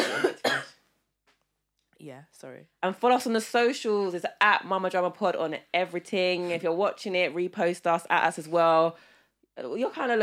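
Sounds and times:
person coughing: 0.0s - 0.8s
speech: 2.0s - 10.2s.

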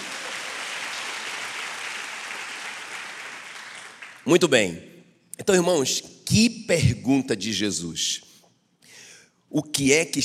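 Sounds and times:
church audience applauding after a prayer: 0.0s - 4.3s
speech: 4.2s - 8.3s, 9.5s - 10.2s.

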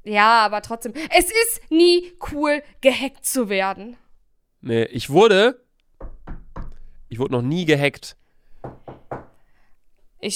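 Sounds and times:
speech: 0.0s - 4.0s, 4.6s - 5.6s, 7.1s - 9.2s
knocks on a hard surface: 6.0s - 6.8s, 8.6s - 9.4s.

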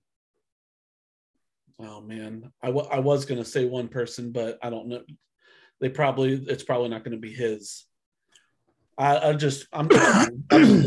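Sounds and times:
speech: 1.7s - 7.9s, 9.0s - 10.8s
person coughing into the microphone: 9.8s - 10.8s.

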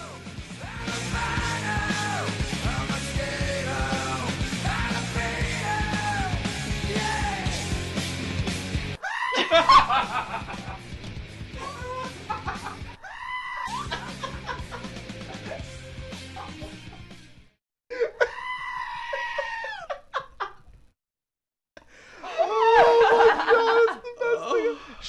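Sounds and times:
loud rock song: 0.0s - 9.0s, 9.9s - 12.8s
laughter: 9.2s - 10.9s, 11.6s - 13.0s, 13.7s - 17.1s, 22.1s - 24.8s
goat screaming edited into rock song: 13.0s - 13.8s, 18.3s - 19.8s.

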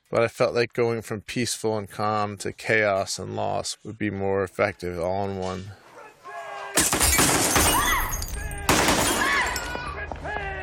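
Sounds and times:
speech: 0.1s - 5.8s, 6.8s - 7.8s
gunshots in a film scene: 6.8s - 9.8s
crashing and shattering: 6.8s - 10.0s.

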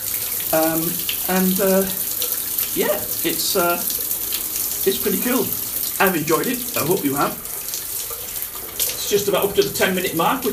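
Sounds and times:
shower water running: 0.0s - 10.5s
speech: 0.5s - 2.1s, 2.8s - 4.0s, 4.8s - 7.5s, 9.1s - 10.5s.

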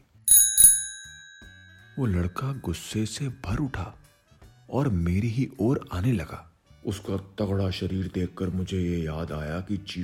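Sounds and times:
bicycle bell ringing: 0.3s - 3.4s
speech: 2.0s - 4.0s, 4.7s - 10.0s.

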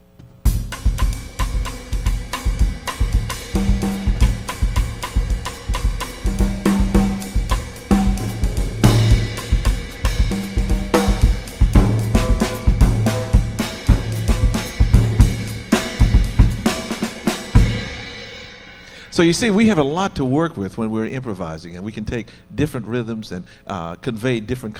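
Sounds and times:
bossa nova rhythm played on drums in a jazz context: 0.4s - 19.8s
speech: 19.2s - 24.7s.

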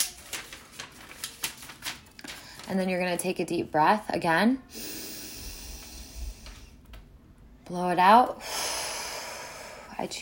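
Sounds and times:
notebook page being folded in half: 0.0s - 2.9s
speech: 2.7s - 4.9s, 7.7s - 8.6s, 10.0s - 10.2s.

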